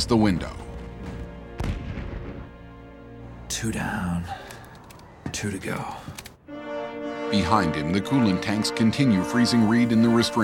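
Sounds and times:
speech: 0.0s - 0.6s, 3.6s - 4.4s, 5.3s - 6.3s, 7.3s - 10.4s
missile exploding against a burning ship: 1.0s - 2.4s.

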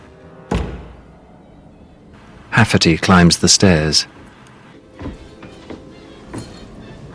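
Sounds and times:
door closing upstairs in a house: 0.5s - 1.0s
speech: 2.6s - 4.2s.

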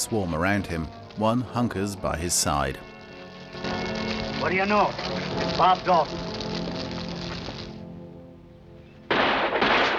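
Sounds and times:
speech: 0.0s - 2.9s, 4.4s - 6.4s
orchestral music: 0.0s - 9.8s
gunshot: 9.1s - 9.9s.

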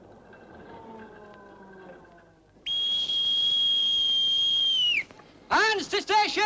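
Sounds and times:
seaman's whistle blast aboard ship: 2.7s - 5.1s
speech: 5.5s - 6.4s.

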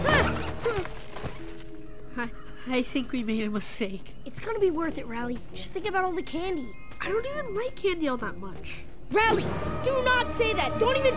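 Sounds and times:
child's inflatable unicorn inner tube squeaking: 0.0s - 1.6s
speech: 2.2s - 11.1s.

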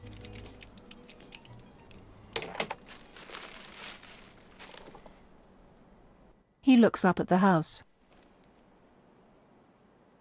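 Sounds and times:
crinkling and rustling of a wrapped bouquet of pink roses being handled: 2.7s - 5.2s
speech: 6.6s - 7.9s.

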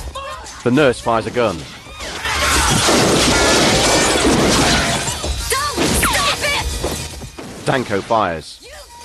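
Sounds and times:
speech: 0.7s - 1.8s, 7.7s - 8.6s
glass wall shattering as a person crashes into it during a gunfight: 2.1s - 8.0s.

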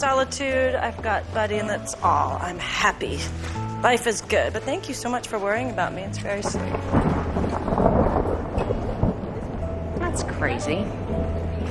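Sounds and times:
speech: 0.0s - 7.2s, 10.2s - 11.6s
heavy rain pounding on the roof of a house: 6.0s - 11.6s.

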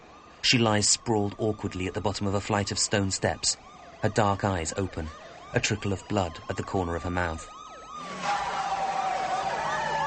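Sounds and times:
police sirens wailing: 0.0s - 10.0s
speech: 0.4s - 8.1s.

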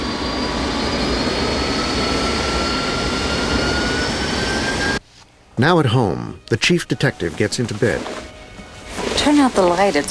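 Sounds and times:
airplane engine roar while taxiing toward the runway: 0.0s - 5.0s
speech: 5.6s - 8.2s, 9.2s - 10.0s.

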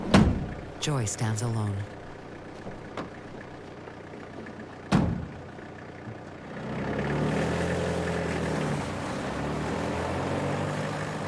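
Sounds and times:
van engine rumbling as it drives away at night: 0.0s - 11.2s
speech: 0.8s - 2.0s
sharp thud: 4.9s - 5.4s.

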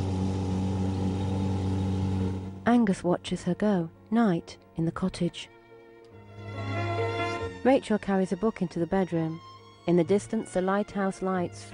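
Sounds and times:
boat motor droning as a boat is steered away: 0.0s - 2.7s
speech: 2.6s - 5.6s, 7.6s - 11.7s.

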